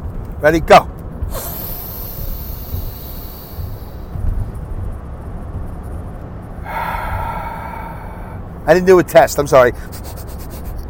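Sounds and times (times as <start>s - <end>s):
speech: 0.4s - 1.5s, 8.7s - 10.2s
deep breathing through the mouth: 1.3s - 4.5s, 6.6s - 8.6s.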